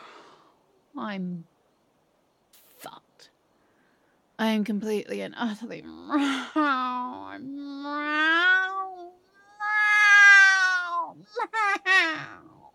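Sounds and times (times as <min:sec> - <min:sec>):
speech: 0:01.0 - 0:01.6, 0:04.4 - 0:08.5
cat yowling and meowing: 0:08.0 - 0:12.6.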